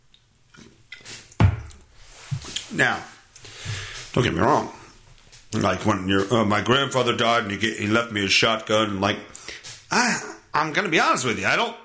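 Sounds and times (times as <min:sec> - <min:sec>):
person sipping beer: 0:00.2 - 0:02.7
speech: 0:02.7 - 0:03.2, 0:04.2 - 0:04.8, 0:05.5 - 0:11.8.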